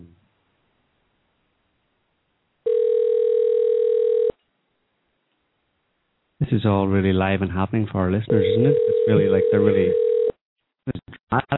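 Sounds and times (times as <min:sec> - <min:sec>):
telephone dial tone while redialing a call: 0:02.7 - 0:04.4, 0:08.5 - 0:10.3
speech: 0:06.5 - 0:10.0, 0:11.3 - 0:11.5.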